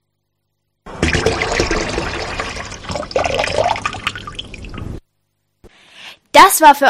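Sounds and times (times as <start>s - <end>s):
water tap running: 0.9s - 5.0s
speech: 6.4s - 6.8s.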